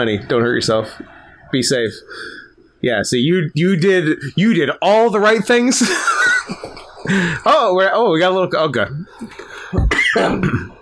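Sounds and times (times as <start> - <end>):
speech: 0.0 - 10.7
laughter: 5.7 - 7.6
person coughing: 9.8 - 10.7.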